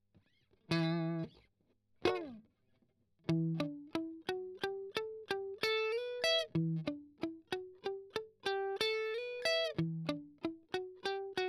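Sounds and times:
strummed octave arpeggio: 0:03.3 - 0:11.4.

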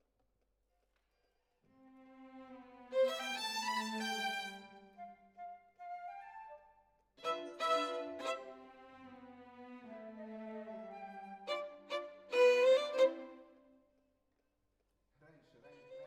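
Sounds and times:
violin solo: 0:01.9 - 0:05.2, 0:07.2 - 0:13.6.

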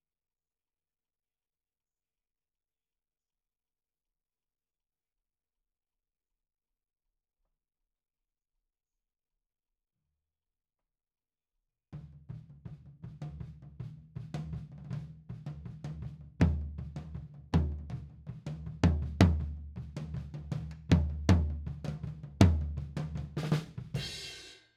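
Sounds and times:
tom drum: 0:12.0 - 0:24.6.

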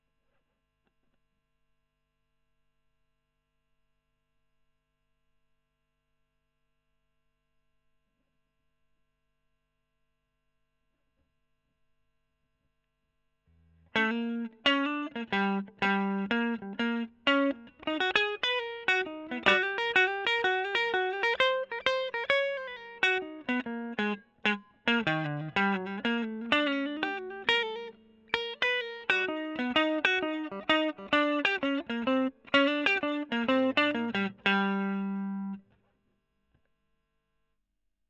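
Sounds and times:
electric guitar solo: 0:13.9 - 0:35.6.

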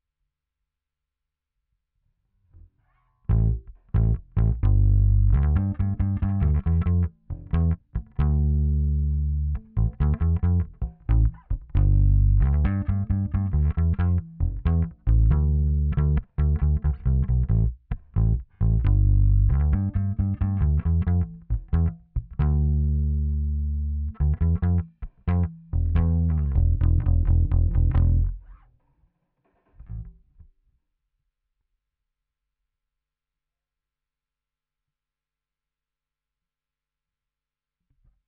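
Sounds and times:
bass amplifier: 0:03.3 - 0:28.7, 0:29.8 - 0:30.5.

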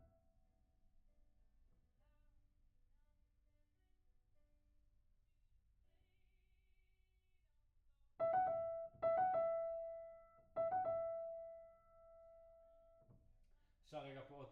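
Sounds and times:
piano note C: 0:08.2 - 0:13.1.

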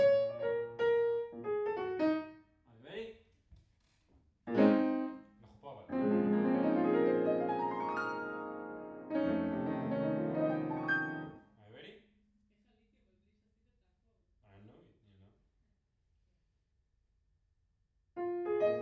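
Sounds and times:
piano playing in a room: 0:00.0 - 0:02.4, 0:04.5 - 0:05.2, 0:05.9 - 0:11.4, 0:18.2 - 0:18.8.

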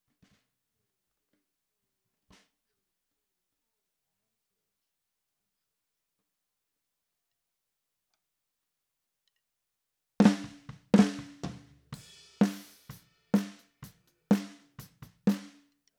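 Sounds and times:
snare drum top: 0:10.2 - 0:15.6.

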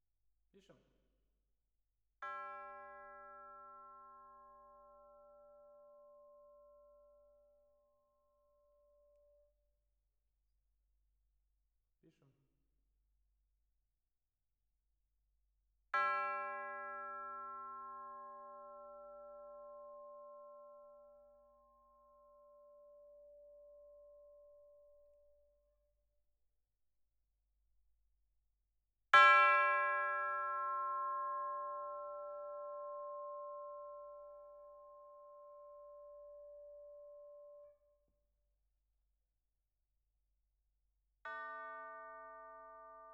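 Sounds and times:
percussion: 0:02.2 - 0:09.5, 0:15.9 - 0:25.8, 0:29.1 - 0:38.0.

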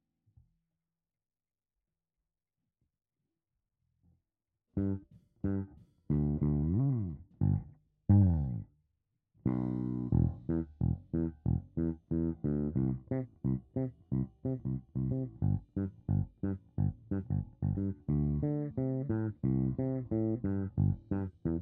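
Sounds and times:
bass: 0:04.8 - 0:08.7, 0:09.4 - 0:21.6.

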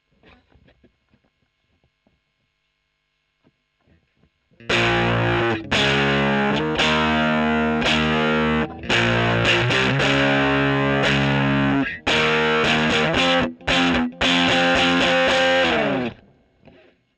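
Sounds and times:
electric guitar: 0:04.6 - 0:16.9.

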